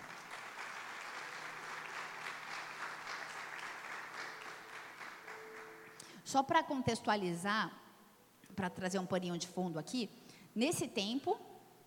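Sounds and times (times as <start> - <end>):
large crowd applauding: 0.0 - 6.0
speech: 6.3 - 7.8, 8.6 - 11.5.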